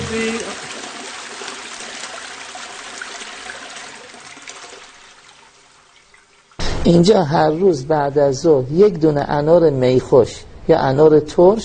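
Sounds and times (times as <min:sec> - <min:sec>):
toilet flushing: 0:00.0 - 0:06.7
speech: 0:00.1 - 0:00.6, 0:06.8 - 0:11.6.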